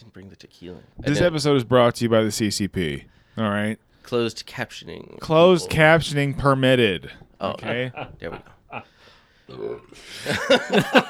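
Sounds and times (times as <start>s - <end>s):
speech: 0.0s - 8.9s, 9.5s - 11.0s
lively voices: 0.0s - 11.0s
person burping: 5.3s - 8.9s, 9.5s - 10.6s
laughter-like vocal sounds: 7.4s - 8.9s, 10.0s - 11.0s.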